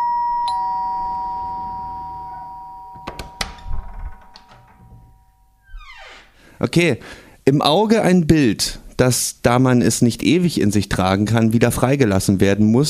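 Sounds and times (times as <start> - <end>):
doorbell chime: 0.0 - 5.6
speech: 6.6 - 12.8.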